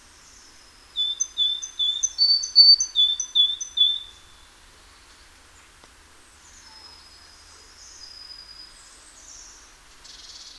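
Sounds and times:
Parus major great tit whistling two-note phrases: 1.0 - 4.2.

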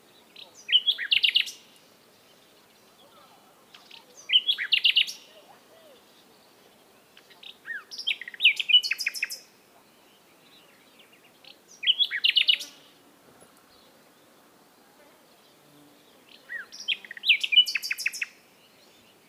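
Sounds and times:
common nightingale Luscinia megarhynchos singing varied whistles and chirps: 0.0 - 13.0, 15.3 - 19.2.

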